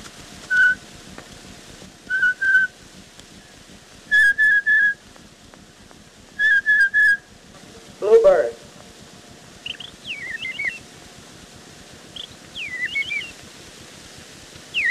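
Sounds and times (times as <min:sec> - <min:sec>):
steady crackly hiss of an old cylinder recording: 0:00.0 - 0:14.9
blue jay call whistled by a person on an old cylinder recording: 0:00.5 - 0:00.8, 0:02.1 - 0:02.8, 0:04.1 - 0:05.0, 0:06.4 - 0:07.3, 0:09.6 - 0:10.8, 0:12.1 - 0:13.4, 0:14.7 - 0:14.9.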